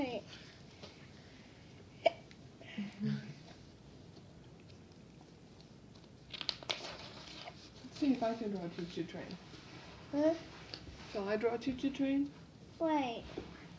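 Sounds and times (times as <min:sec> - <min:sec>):
hiccups: 0:02.0 - 0:02.3
speech: 0:08.0 - 0:09.5, 0:10.1 - 0:13.5.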